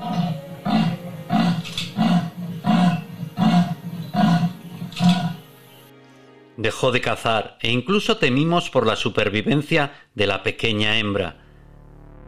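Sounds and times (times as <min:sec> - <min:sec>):
female leopard calling with short rasping roars searching for her dead cub: 0:00.0 - 0:05.4
speech: 0:06.6 - 0:11.4.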